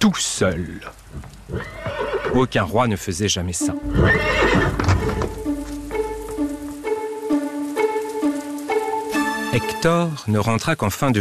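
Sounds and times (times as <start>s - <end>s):
speech: 0.0s - 5.2s, 9.8s - 11.1s
horse walking into a dark forest with hooves clip-clopping: 0.4s - 2.4s, 3.7s - 9.3s
noisy burst like a horse whinny: 1.5s - 2.4s, 3.8s - 5.4s.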